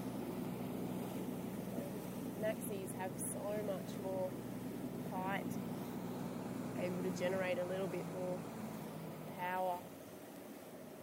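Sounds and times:
broad rushing wash of water: 0:00.0 - 0:11.0
low engine drone from a small boat moving up a harbour: 0:00.0 - 0:11.0
wind: 0:00.0 - 0:11.0
speech: 0:02.4 - 0:04.6, 0:05.2 - 0:05.7, 0:06.8 - 0:08.6, 0:09.4 - 0:09.9.

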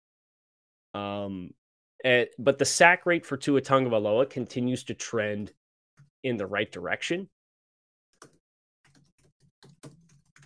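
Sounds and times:
speech: 0:01.0 - 0:05.6, 0:06.2 - 0:07.4
keys pounded on a computer keyboard: 0:08.2 - 0:10.4.

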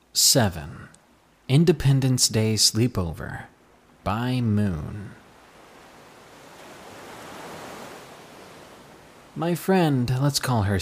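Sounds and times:
speech: 0:00.2 - 0:05.2, 0:09.4 - 0:10.7
ocean surf roaring: 0:03.3 - 0:10.6.

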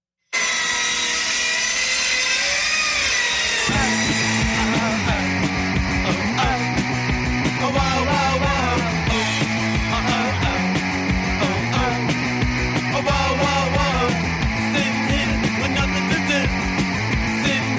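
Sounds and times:
circular saw cutting through wood: 0:00.3 - 0:17.7
steady rhythmic beat: 0:03.7 - 0:17.7.

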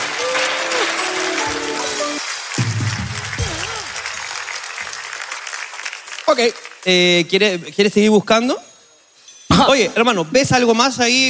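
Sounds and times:
audience applause: 0:00.0 - 0:06.9
speech: 0:06.4 - 0:08.7, 0:09.6 - 0:11.2.

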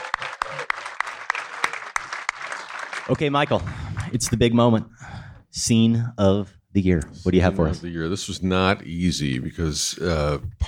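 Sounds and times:
steady evenly spaced sharp claps: 0:00.0 - 0:04.4
audience applause at a film wrap party in a cinema: 0:00.0 - 0:04.5
speech: 0:03.1 - 0:10.6.

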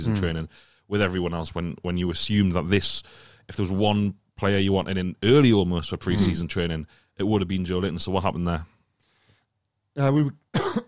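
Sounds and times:
speech: 0:00.0 - 0:08.7, 0:10.0 - 0:10.8
rough voiced throat-clearing: 0:06.1 - 0:06.4, 0:10.5 - 0:10.8
sharp breathy cough: 0:06.1 - 0:06.4, 0:10.5 - 0:10.8.

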